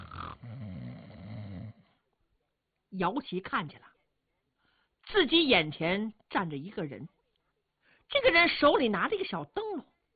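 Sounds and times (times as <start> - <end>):
person snoring: 0.0 - 1.9
speech: 3.0 - 3.9, 5.1 - 7.2, 8.1 - 9.9.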